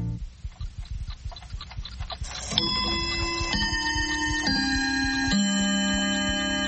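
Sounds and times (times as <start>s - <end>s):
clock ticking: 0.2s - 6.6s
ringing chime-like bell tones: 2.5s - 6.6s.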